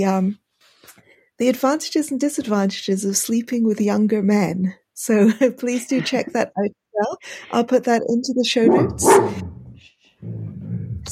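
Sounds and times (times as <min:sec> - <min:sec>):
speech: 0:00.0 - 0:00.4, 0:01.4 - 0:09.6, 0:10.2 - 0:10.5
laughter: 0:05.7 - 0:06.7
dog barking: 0:08.7 - 0:09.6
low grumbling: 0:08.7 - 0:11.1.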